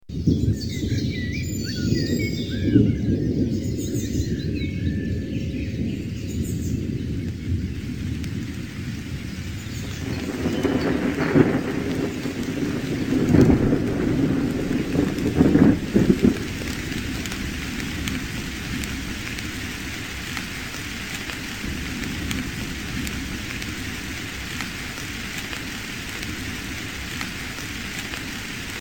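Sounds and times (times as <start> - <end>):
thunderstorm beginning in France: 0.0 - 28.7.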